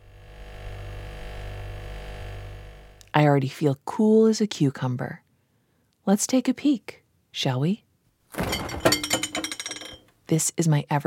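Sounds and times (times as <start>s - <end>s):
speech: 3.2s - 5.2s, 6.1s - 8.4s, 10.3s - 11.0s
refrigerator humming with a deep electrical drone: 8.3s - 10.0s.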